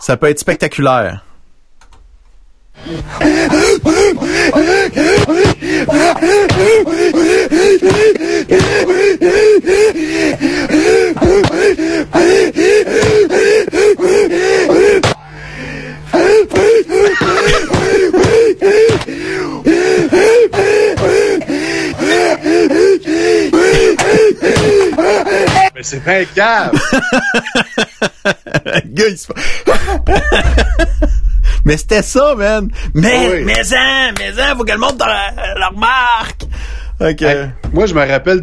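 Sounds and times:
speech: 0.0s - 1.3s, 2.8s - 15.0s, 25.8s - 38.4s
man breathing heavily in an advertisement: 2.7s - 26.2s, 29.3s - 31.7s, 32.7s - 33.0s, 36.4s - 37.0s
laughter: 2.8s - 31.6s.

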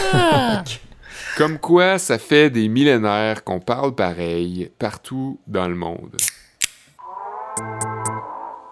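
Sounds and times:
laughter: 0.0s - 0.8s
speech: 1.4s - 6.4s
beer bottle being opened: 6.2s - 6.9s.

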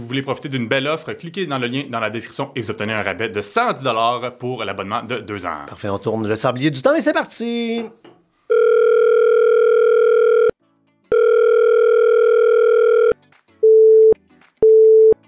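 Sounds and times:
speech: 0.0s - 8.1s
telephone ringing tones before a call reaches voicemail: 8.5s - 10.5s, 11.1s - 15.2s.

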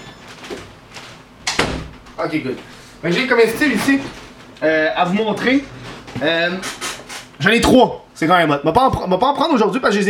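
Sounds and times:
door pushed shut and latching: 1.4s - 2.2s
speech: 2.2s - 6.8s, 7.4s - 10.0s.

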